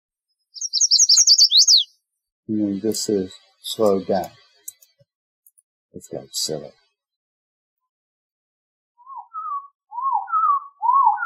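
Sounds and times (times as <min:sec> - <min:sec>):
chestnut-sided warbler singing: 0:00.4 - 0:04.6, 0:09.0 - 0:11.2
speech: 0:02.5 - 0:04.4, 0:06.0 - 0:06.8.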